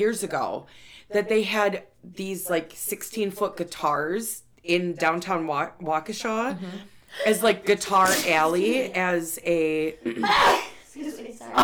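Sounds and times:
speech: 0.0 - 11.6
sneeze: 7.2 - 8.9, 10.2 - 10.9.

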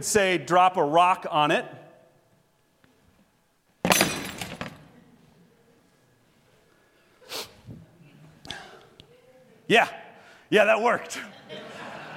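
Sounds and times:
speech: 0.0 - 1.8, 9.7 - 11.4
wine glass dropped and shattering on floor: 3.8 - 4.8
laughter: 11.0 - 12.1.

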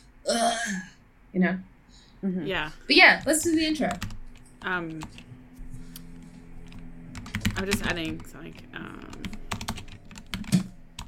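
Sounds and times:
speech: 0.7 - 5.2, 7.6 - 9.0
typing on a computer keyboard: 3.2 - 5.2, 6.6 - 11.0.

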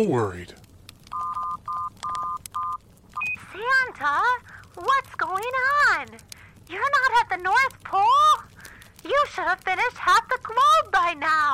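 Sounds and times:
speech: 0.0 - 0.6, 4.0 - 11.5
faint clicks: 0.5 - 10.6
cell phone keypad beeps as a number is dialed: 1.1 - 3.5.

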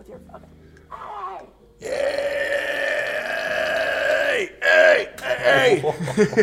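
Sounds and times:
short guttural croak: 1.8 - 4.5
loud drawn-out burp: 1.8 - 5.7
laughter: 5.2 - 6.4
speech: 5.7 - 6.4.

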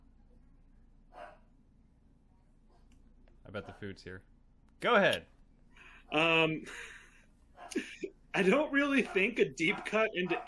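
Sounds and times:
low hum: 0.0 - 10.4
dog bark: 1.1 - 1.5, 3.6 - 3.9, 9.0 - 10.4
speech: 3.5 - 5.4, 6.1 - 7.0, 7.7 - 10.4.

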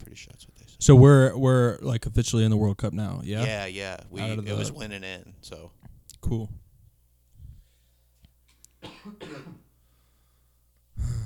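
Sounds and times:
speech: 0.2 - 6.6, 8.8 - 9.6
person coughing harshly: 8.8 - 9.7.

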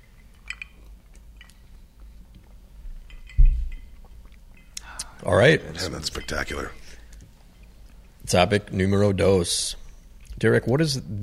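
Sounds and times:
glasses clinking together in a toast: 3.0 - 4.8, 5.7 - 7.0
soft low thump: 3.4 - 3.8
speech: 5.2 - 6.8, 8.3 - 9.8, 10.4 - 11.2.

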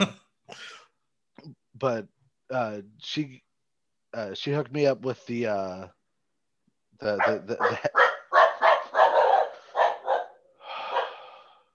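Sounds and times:
speech: 1.8 - 3.5, 4.1 - 6.0, 7.0 - 7.9
dog barking: 7.2 - 11.2.

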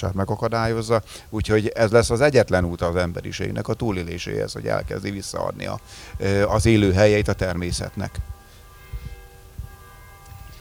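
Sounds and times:
speech: 0.0 - 8.4
church bells ringing: 0.0 - 10.5.

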